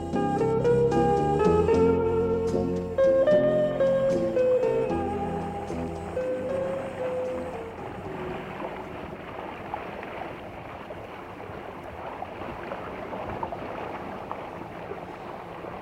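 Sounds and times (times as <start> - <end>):
rushing sea water: 0.0 - 15.7
small motorboat engine drone on the calm Mediterranean Sea: 0.0 - 15.7.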